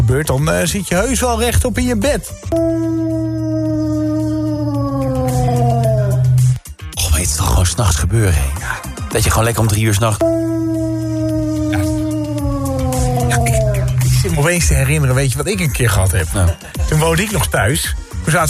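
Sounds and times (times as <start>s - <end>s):
speech: 0.1s - 3.2s, 7.3s - 10.4s, 14.2s - 18.4s
dog howling in its sleep: 2.5s - 6.6s, 10.2s - 14.3s.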